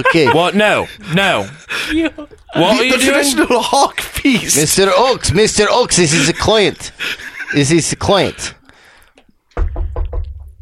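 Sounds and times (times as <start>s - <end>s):
laughter: 0.0s - 8.6s
speech: 0.0s - 8.6s
knocking on a piece of wood: 9.6s - 10.6s.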